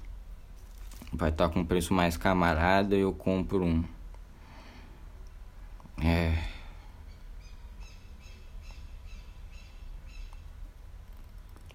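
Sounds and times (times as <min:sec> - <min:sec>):
steady low rumble of ambient noise: 0:00.0 - 0:11.7
speech: 0:01.1 - 0:04.0
bird squawking with short harsh calls: 0:07.0 - 0:10.5.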